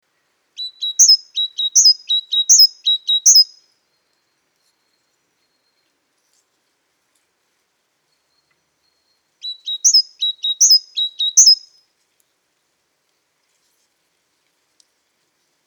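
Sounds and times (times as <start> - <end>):
great tit Parus major whistling: 0.6 - 3.6, 9.4 - 11.7.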